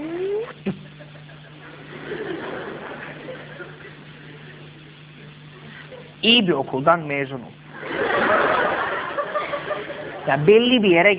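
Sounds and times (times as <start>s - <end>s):
voice imitating a car engine: 0.0s - 0.6s
laughter: 0.6s - 4.8s, 7.7s - 10.4s
speech: 6.2s - 7.6s, 10.3s - 11.1s.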